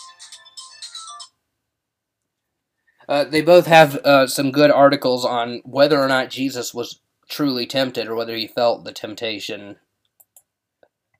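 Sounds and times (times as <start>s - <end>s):
mobile phone ringtone: 0.0s - 1.4s
speech: 3.1s - 9.8s.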